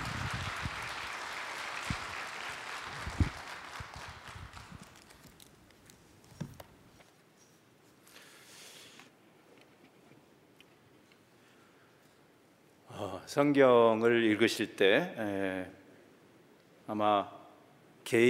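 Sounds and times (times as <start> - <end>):
audience applause welcoming a speaker: 0.0 - 5.3
speech: 13.3 - 15.8, 16.9 - 17.4.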